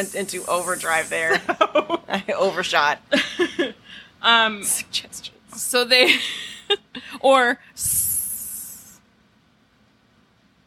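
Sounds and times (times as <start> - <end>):
person hissing like a snake through teeth: 0.0 - 1.4, 7.8 - 9.0
speech: 0.0 - 8.0.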